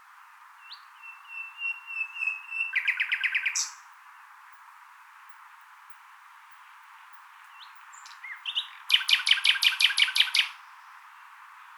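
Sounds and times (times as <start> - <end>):
common nightingale song with whistled notes and sharp repeated notes: 0.6 - 3.9, 7.5 - 10.9.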